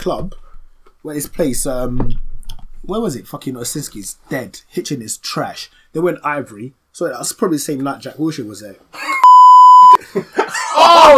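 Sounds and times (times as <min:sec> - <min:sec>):
speech: 0:00.0 - 0:00.4, 0:01.0 - 0:02.2, 0:02.8 - 0:09.2, 0:09.9 - 0:11.1
censor bleep tone over swear word: 0:09.2 - 0:10.0
people laughing: 0:10.0 - 0:11.1.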